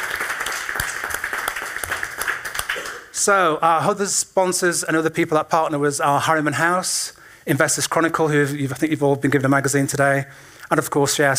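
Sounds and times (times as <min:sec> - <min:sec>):
audience applause at a live event: 0:00.0 - 0:03.1
speech: 0:03.2 - 0:11.3.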